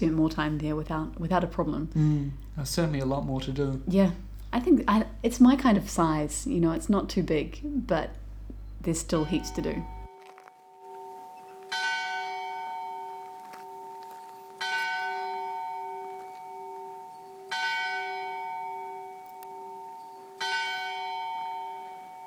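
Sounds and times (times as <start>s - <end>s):
speech: 0.0s - 8.2s, 8.8s - 10.0s
church bell tolling over Salzburg: 9.2s - 10.1s, 10.8s - 22.2s.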